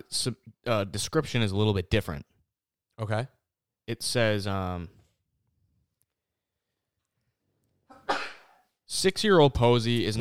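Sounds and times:
speech: 0.1s - 2.3s, 3.0s - 5.0s, 8.9s - 10.1s
sneeze: 7.9s - 8.7s.

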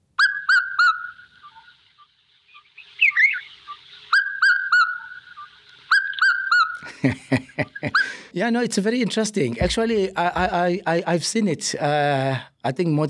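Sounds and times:
red-chested cuckoo calling a ringing three-note phrase: 0.0s - 8.3s
brief warbling bird sound: 0.2s - 1.8s, 2.5s - 6.8s
laughter: 6.8s - 8.3s
speech: 7.0s - 13.0s.

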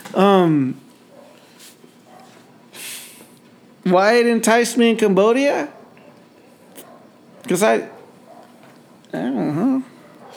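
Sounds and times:
soft hiss of noise: 0.0s - 10.3s
speech: 0.1s - 0.9s, 3.9s - 5.8s, 7.5s - 8.0s, 9.1s - 9.6s
dog barking: 1.1s - 1.4s, 2.0s - 2.4s, 5.6s - 9.0s, 9.9s - 10.3s.

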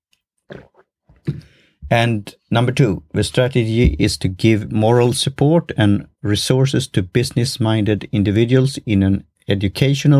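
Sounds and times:
person sipping hot black tea: 0.5s - 1.6s
swallow: 0.5s - 1.8s
speech: 1.9s - 10.1s.

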